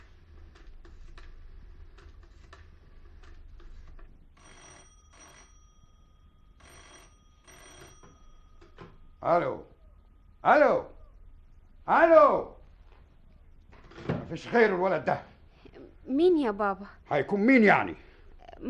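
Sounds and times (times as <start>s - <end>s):
old telephone bell ringing: 4.0s - 11.1s
speech: 9.2s - 9.7s, 10.4s - 10.9s, 11.9s - 12.5s, 14.3s - 15.3s, 16.1s - 18.0s.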